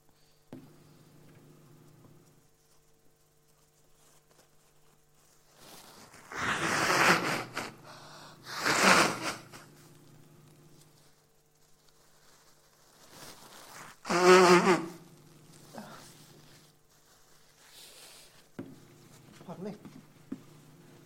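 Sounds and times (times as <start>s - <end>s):
quiet room hum: 0.0s - 21.0s
person blowing nose: 5.6s - 9.9s, 13.1s - 18.5s.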